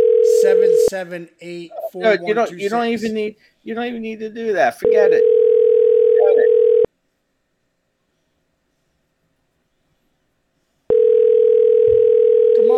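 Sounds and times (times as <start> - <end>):
outgoing phone call ringback tone: 0.0 - 0.9, 4.8 - 6.9, 10.9 - 12.7
speech: 0.9 - 5.4.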